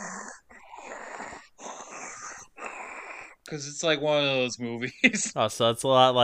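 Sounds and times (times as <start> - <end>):
voice imitating heavy rasping breathing through a gas mask: 0.0 - 3.5
speech: 3.5 - 6.2.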